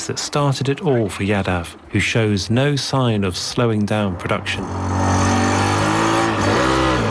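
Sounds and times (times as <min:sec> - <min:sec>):
speech: 0:00.0 - 0:05.2
engine of a homemade shoe-shaped car driving around a car park: 0:03.9 - 0:07.1.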